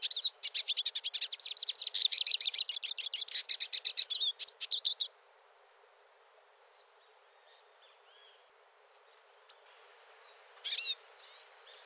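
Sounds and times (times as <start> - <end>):
finch singing: 0.0 - 5.1, 10.2 - 11.8.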